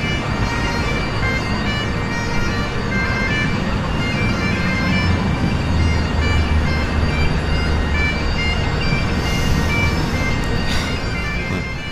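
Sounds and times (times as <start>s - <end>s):
low rumble of street noise: 0.0s - 11.9s
small bagpipe played by street musician outdoors: 0.0s - 11.9s.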